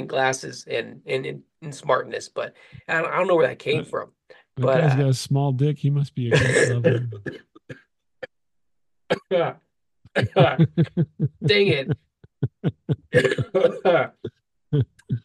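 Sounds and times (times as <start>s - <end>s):
speech: 0.0s - 7.8s, 9.3s - 15.2s
person making a brief spoken exclamation: 6.3s - 7.2s, 10.2s - 15.2s
person coughing: 6.3s - 7.8s, 10.2s - 15.2s
breathy laughter: 10.2s - 15.2s.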